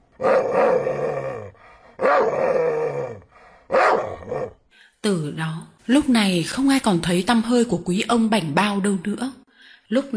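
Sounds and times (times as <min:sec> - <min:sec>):
dogs barking, howling and growling: 0:00.0 - 0:04.6
speech: 0:05.0 - 0:10.1.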